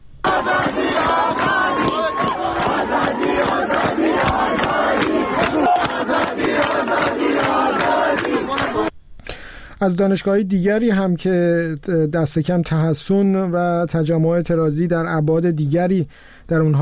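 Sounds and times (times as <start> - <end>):
protesting university students chanting a slogan in unison at a campus sit-in: 0.2 - 8.9
speech: 9.8 - 16.8.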